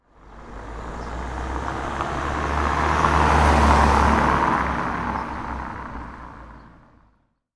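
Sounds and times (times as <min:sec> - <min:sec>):
car driving by slowly on tiled road: 0:00.0 - 0:07.3.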